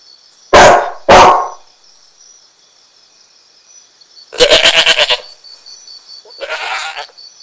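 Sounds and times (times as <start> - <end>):
dog barking: 0.5 - 1.6
goat bleating: 4.4 - 5.4, 6.3 - 7.1.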